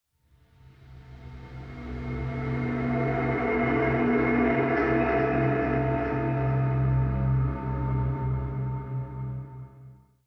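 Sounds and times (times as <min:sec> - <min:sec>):
dubstep synth pad: 0:01.2 - 0:09.7.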